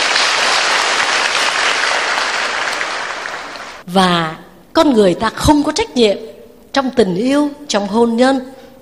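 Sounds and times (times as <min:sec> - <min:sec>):
large audience applause: 0:00.0 - 0:03.8
speech: 0:03.9 - 0:08.6.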